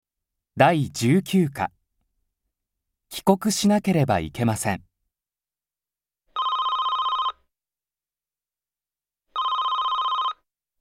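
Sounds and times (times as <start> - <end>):
speech: 0.6 - 1.8, 3.1 - 4.9
telephone ringing with a rapid trilling bell: 6.3 - 7.4, 9.3 - 10.5.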